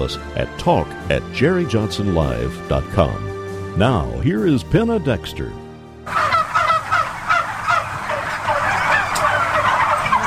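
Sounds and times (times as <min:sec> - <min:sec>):
speech: 0:00.0 - 0:06.2
flock of turkeys gobbling at a turkey farm: 0:06.1 - 0:10.2.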